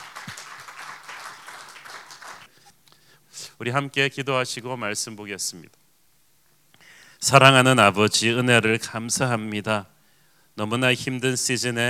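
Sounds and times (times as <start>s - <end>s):
audience applauding: 0.0s - 2.5s
speech: 3.6s - 5.8s, 7.2s - 9.9s, 10.6s - 11.8s.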